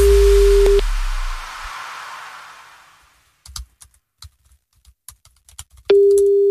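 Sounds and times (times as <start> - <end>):
hiss: 0.0 - 3.6
phone ringback tone of an unanswered call: 5.9 - 6.4.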